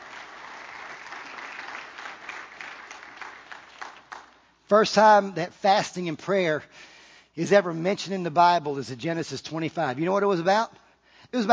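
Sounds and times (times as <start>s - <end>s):
audience applause as a clap offering: 0.0s - 4.4s
speech: 4.7s - 11.5s.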